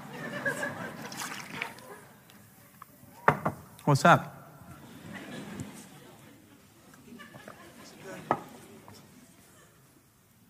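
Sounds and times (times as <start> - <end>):
laughter: 0.0 - 2.7, 4.7 - 10.1
water pouring: 0.8 - 2.0
speech: 3.9 - 4.4.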